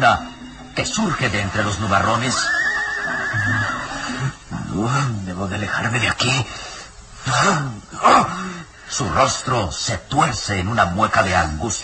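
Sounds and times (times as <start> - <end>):
speech: 0.0 - 2.6, 4.8 - 11.8
horse neighing as its rider pulls the reins: 1.8 - 4.5.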